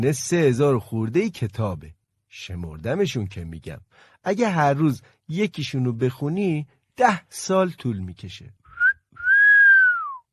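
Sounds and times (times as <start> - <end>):
speech: 0.0 - 8.6
loud human whistle: 8.7 - 10.3.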